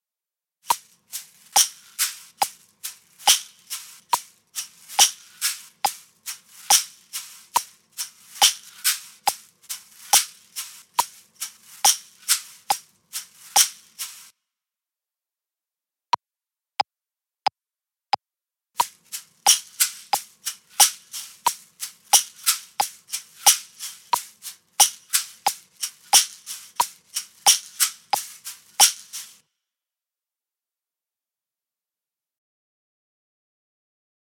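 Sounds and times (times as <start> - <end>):
two different caxixi shakers: 0.7 - 14.3, 18.8 - 29.4.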